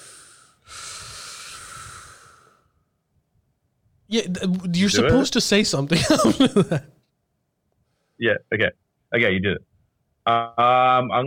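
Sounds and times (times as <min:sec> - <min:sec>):
person taking deep breath: 0:00.0 - 0:02.8
speech: 0:04.1 - 0:07.0, 0:08.2 - 0:11.2
laughter: 0:04.8 - 0:07.0.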